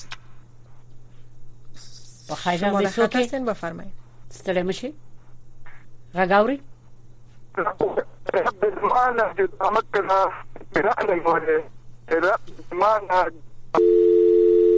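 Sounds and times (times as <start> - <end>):
speech: 2.3 - 5.1, 6.1 - 6.7, 7.6 - 13.9
voices talking on the telephone line: 7.4 - 13.4
telephone dial tone after caller's line disconnected: 13.8 - 14.7.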